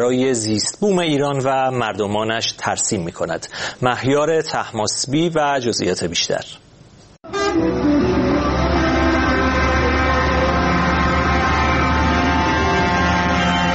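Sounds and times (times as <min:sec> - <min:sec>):
speech: 0:00.0 - 0:06.6
truck horns blaring from a protest convoy in Farrokhshahr Iran: 0:07.3 - 0:13.7.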